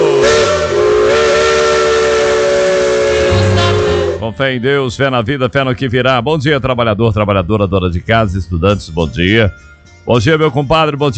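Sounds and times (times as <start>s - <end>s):
steam train whistle blowing with breathy hiss: 0.0s - 4.3s
low rumble: 3.3s - 4.2s
speech: 4.3s - 11.1s.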